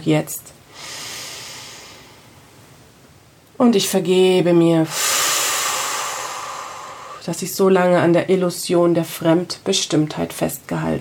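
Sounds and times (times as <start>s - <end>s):
speech: 0.0s - 0.6s, 3.6s - 5.1s, 7.2s - 11.0s
deep inhalation during a guided relaxation exercise: 0.7s - 2.4s, 4.9s - 7.2s.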